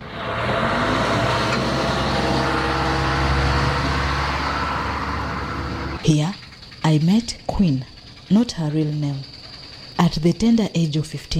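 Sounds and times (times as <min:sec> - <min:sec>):
passing vehicles in street traffic: 0:00.0 - 0:06.0
motorcycle taxi engine drone moving through street traffic: 0:00.0 - 0:09.0
speech: 0:07.3 - 0:09.3, 0:10.0 - 0:11.3.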